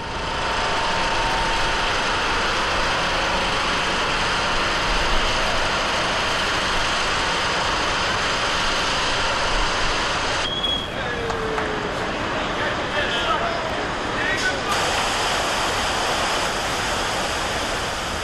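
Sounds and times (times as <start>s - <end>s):
crane engine running: 0.0s - 18.2s
river water flowing into new channel: 14.7s - 18.2s.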